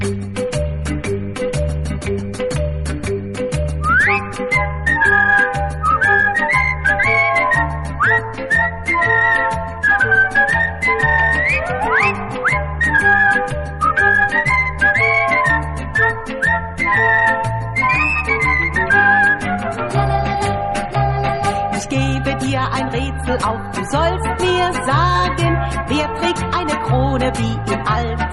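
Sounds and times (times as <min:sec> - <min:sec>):
bouncy band accompaniment: 0:00.0 - 0:28.0
thumping bass: 0:00.0 - 0:28.3
woman whistling a melody with swooping slides: 0:03.6 - 0:19.9.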